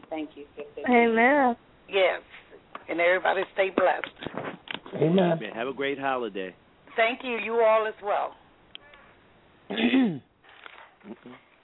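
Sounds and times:
speech: 0.1s - 8.4s, 9.7s - 10.3s, 11.0s - 11.4s
person clearing throat over a phone-like line: 9.7s - 10.3s.

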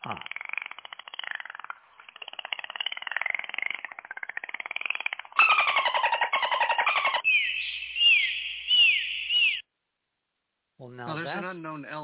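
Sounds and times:
speech: 0.0s - 0.4s, 11.3s - 12.0s
rising and falling dolphin chirps: 0.0s - 9.6s
buzzing trains of dolphin clicks: 0.1s - 6.9s
looping dolphin whistles: 5.4s - 9.6s.

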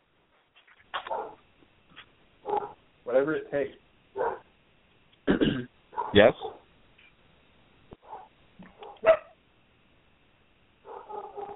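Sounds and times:
several dogs barking back and forth: 1.0s - 1.5s, 2.4s - 2.8s, 4.2s - 4.5s, 5.9s - 6.7s, 8.0s - 9.4s, 10.8s - 11.5s
speech: 3.1s - 3.8s, 5.6s - 6.6s.

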